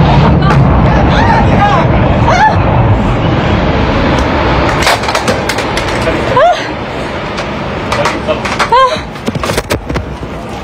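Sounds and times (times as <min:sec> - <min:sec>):
booming explosions from raids targeting a tower: 0:00.0 - 0:10.4
raised voices and shouting: 0:00.3 - 0:02.7.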